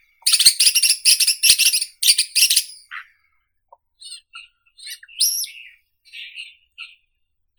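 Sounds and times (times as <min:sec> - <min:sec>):
long-tailed shrike Lanius schach calling: 0:00.3 - 0:02.8.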